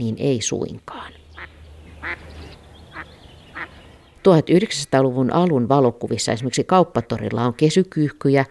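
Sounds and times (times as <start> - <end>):
speech: 0.0 - 1.2, 4.2 - 8.4
mallard duck quacking: 1.3 - 4.0.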